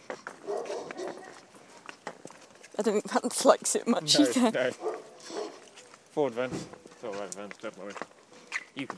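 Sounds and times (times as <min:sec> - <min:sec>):
dog barking: 0:00.4 - 0:01.4, 0:04.1 - 0:05.6
speech: 0:02.8 - 0:05.0, 0:06.2 - 0:08.2, 0:08.8 - 0:08.9.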